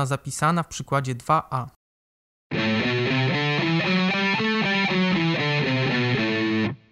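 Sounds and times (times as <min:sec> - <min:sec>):
speech: 0:00.0 - 0:01.8
A Dorian minor scale played on heavily distorted electric guitar: 0:02.5 - 0:06.8.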